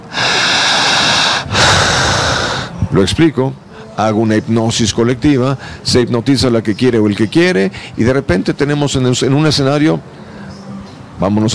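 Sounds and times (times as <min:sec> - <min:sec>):
hypnotist breathing deeply to demonstrate breathing: 0:00.0 - 0:02.9, 0:05.6 - 0:05.8
speech: 0:02.9 - 0:10.2, 0:11.2 - 0:11.5.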